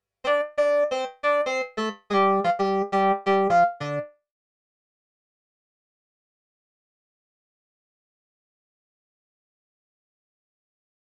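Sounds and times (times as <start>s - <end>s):
synth lead: 0.3s - 4.1s.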